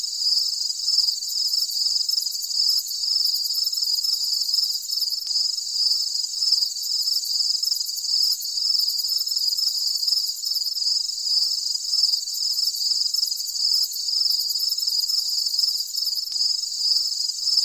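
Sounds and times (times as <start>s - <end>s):
cricket chorus of shrill pulsing chirps: 0.0s - 17.6s.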